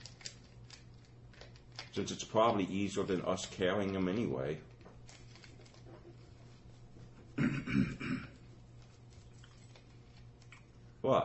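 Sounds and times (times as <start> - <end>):
speech: 2.0 - 4.7
person clearing throat: 7.4 - 8.4.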